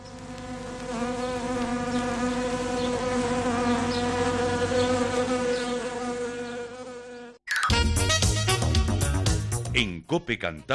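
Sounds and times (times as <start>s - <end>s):
wasps buzzing: 0.0s - 7.4s
music-like sound: 7.5s - 10.0s
speech: 10.1s - 10.7s.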